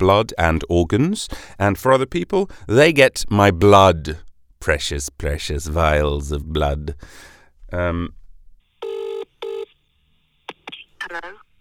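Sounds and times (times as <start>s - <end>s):
speech: 0.0s - 8.2s
phone call ringing tone: 8.8s - 9.7s.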